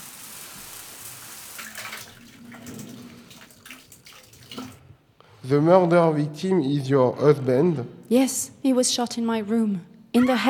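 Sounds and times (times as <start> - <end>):
shower water running: 0.0 - 4.8
speech: 5.4 - 10.4.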